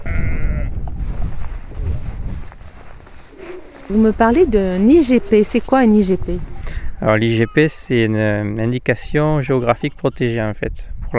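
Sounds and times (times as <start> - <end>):
ewes and lambs bleating: 0.0 - 0.8
steady low rumble of wind: 0.0 - 7.2
speech: 3.9 - 11.1.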